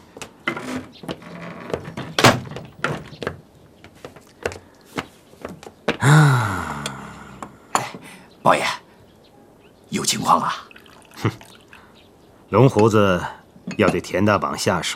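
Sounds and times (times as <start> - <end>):
knocks and bumps: 0.2 - 6.1
door shutting with a solid thunk: 0.6 - 3.2
speech: 8.5 - 8.8, 10.0 - 11.4, 12.5 - 14.9.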